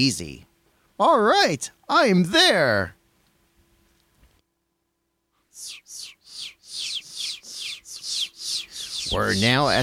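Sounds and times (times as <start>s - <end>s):
speech: 0.0s - 3.0s, 9.1s - 9.8s
chicks on a farm chirping: 5.6s - 9.8s.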